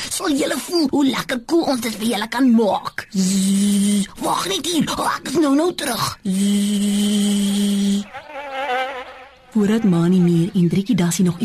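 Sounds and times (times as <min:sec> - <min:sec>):
speech: 0:00.2 - 0:08.9, 0:09.6 - 0:11.4
fly buzzing as it flies up and away over a tree: 0:06.3 - 0:11.4.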